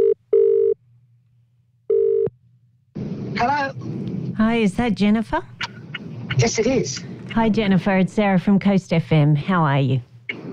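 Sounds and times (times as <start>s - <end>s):
telephone ringback tone on an outgoing call: 1.9s - 2.3s
speech: 3.4s - 5.7s, 6.4s - 10.1s.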